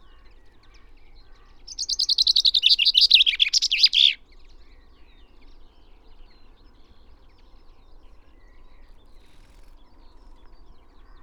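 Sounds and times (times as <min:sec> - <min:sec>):
Common chaffinch Fringilla coelebs song: 0:01.7 - 0:04.2.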